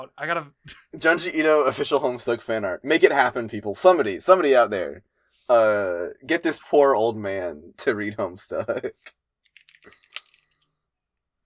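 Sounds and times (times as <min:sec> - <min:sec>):
speech: 0:00.0 - 0:09.2
typing on a computer keyboard: 0:09.4 - 0:10.7.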